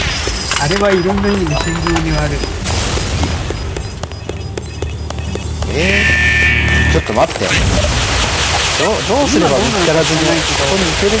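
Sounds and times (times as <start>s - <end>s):
bomber container explosions in a video game: 0.0s - 11.1s
speech: 0.6s - 3.4s, 5.7s - 6.3s, 6.9s - 8.0s, 8.8s - 11.1s.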